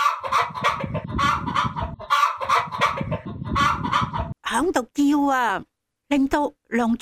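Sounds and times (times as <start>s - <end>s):
frightened hens on a farm clucking and squawking: 0.0s - 4.4s
speech: 4.6s - 7.0s.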